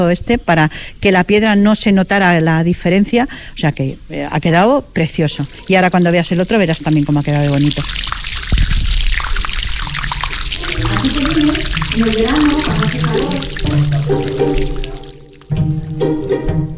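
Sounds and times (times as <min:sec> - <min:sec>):
speech: 0:00.0 - 0:08.6, 0:11.0 - 0:14.9
fresh spring water flowing from fountain: 0:04.2 - 0:15.8.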